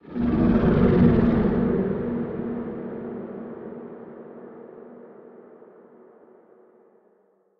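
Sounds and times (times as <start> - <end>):
unknown kaiju creatures: 0.1 - 3.4.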